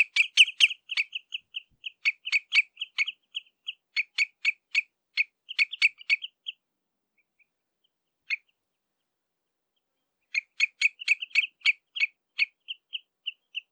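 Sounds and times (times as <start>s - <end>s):
common redshank contact calls, sharp piping notes: 0.0s - 6.6s, 10.3s - 13.6s.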